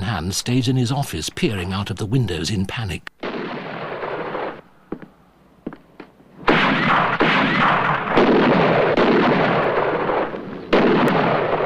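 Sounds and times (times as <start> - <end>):
speech: 0.2 - 3.1
gunshots in a shootout around a hotel with rooftop snipers: 3.2 - 4.6, 6.4 - 11.6.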